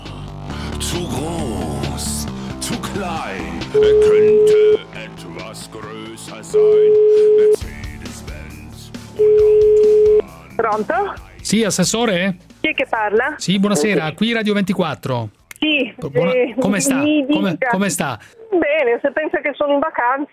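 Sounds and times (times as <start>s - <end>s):
speech: 0.8s - 2.1s, 3.0s - 4.9s, 5.5s - 7.6s, 10.6s - 20.3s
telephone tones while a call is being placed: 6.6s - 7.6s, 9.2s - 10.2s.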